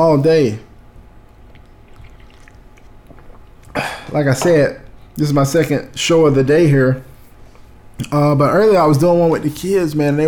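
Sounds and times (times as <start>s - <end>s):
speech: 0.0s - 0.7s, 3.8s - 7.1s, 8.0s - 10.2s
steady low rumble of noise: 0.0s - 10.2s
sipping hot coffee with wet slurps: 1.3s - 4.2s.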